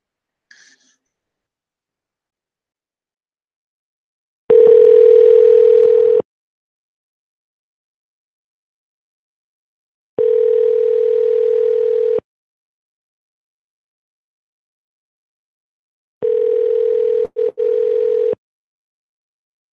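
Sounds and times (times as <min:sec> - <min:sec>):
ringback tones of an outgoing telephone call: 0:04.5 - 0:06.2, 0:10.2 - 0:12.2, 0:16.2 - 0:18.4.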